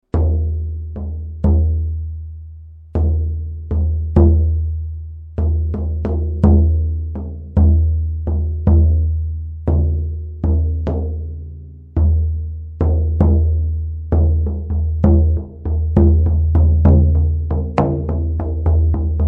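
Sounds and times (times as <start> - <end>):
shaman frame drum: 0.1 - 19.2.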